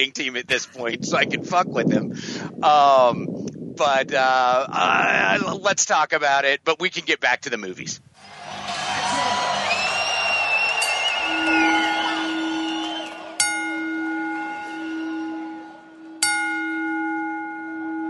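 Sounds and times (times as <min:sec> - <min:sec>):
speech: 0:00.0 - 0:08.4
steady low hum: 0:09.6 - 0:18.0
wrestling ring bell clanging: 0:13.4 - 0:18.0.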